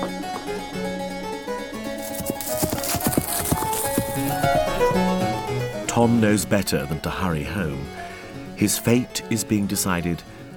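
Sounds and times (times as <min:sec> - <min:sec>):
sustained music: 0:01.1 - 0:09.4
horse hooves clip-clopping: 0:02.0 - 0:04.9
speech: 0:06.0 - 0:10.4.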